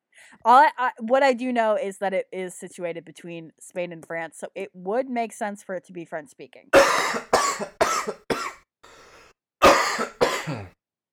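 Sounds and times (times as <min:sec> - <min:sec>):
speech: 0:00.3 - 0:07.8
person coughing harshly: 0:06.8 - 0:08.6, 0:09.6 - 0:10.7
raspy breath: 0:08.8 - 0:09.3.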